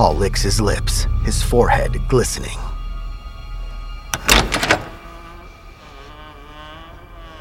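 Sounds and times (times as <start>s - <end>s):
speech: 0.0s - 2.7s
quiet steady hum: 0.0s - 6.7s
locked doorknob jiggling: 4.1s - 5.2s.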